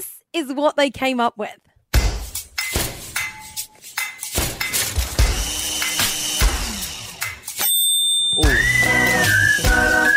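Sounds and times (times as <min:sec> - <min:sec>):
speech: 0:00.0 - 0:01.7
pots, pans and kitchen utensils struck as instruments: 0:01.9 - 0:10.1
bright ringing tones: 0:07.6 - 0:08.6
melodic whistled tune: 0:08.0 - 0:10.1.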